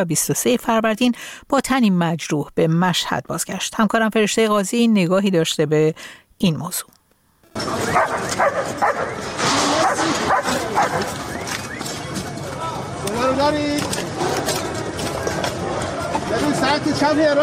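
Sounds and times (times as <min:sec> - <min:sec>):
speech: 0:00.0 - 0:07.0, 0:07.6 - 0:11.4, 0:13.0 - 0:14.6, 0:15.4 - 0:17.4
Red Crescent Society search-and-rescue dog barking with yips and a whimper: 0:07.8 - 0:11.4.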